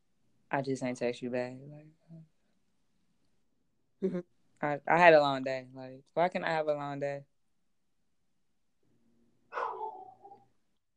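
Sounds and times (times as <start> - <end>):
speech: 0.5 - 2.3, 4.0 - 7.3
dog barking: 9.5 - 10.4.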